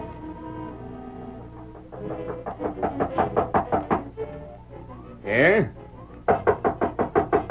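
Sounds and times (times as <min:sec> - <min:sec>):
firm knocking on a wooden door: 0:01.6 - 0:04.2, 0:06.3 - 0:07.4.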